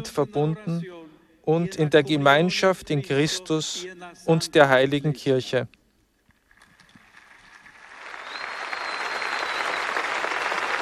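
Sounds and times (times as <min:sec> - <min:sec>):
speech: 0:00.0 - 0:05.8
large crowd applauding: 0:06.5 - 0:10.7.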